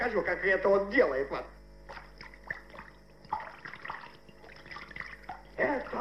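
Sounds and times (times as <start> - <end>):
speech: 0.0 - 2.0, 5.6 - 6.0
water pouring into a basin: 1.9 - 6.0.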